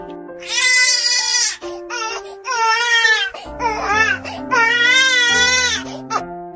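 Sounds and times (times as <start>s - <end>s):
baby wailing in someone's arms, frightened by a fierce voice: 0.4s - 6.2s.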